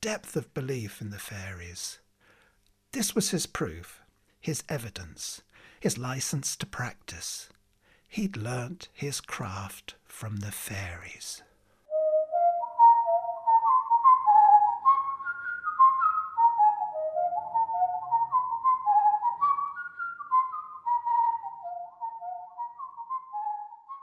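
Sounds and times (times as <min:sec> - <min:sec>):
speech: 0:00.0 - 0:02.0, 0:02.9 - 0:11.5
person whistling a traditional Irish jig: 0:11.9 - 0:24.0.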